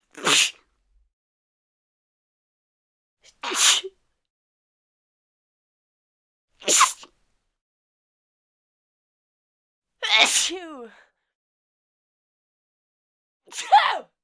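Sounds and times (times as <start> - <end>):
woman sneezing: 0.2 - 0.6, 3.3 - 3.9, 6.6 - 7.1, 10.0 - 10.9, 13.5 - 14.1.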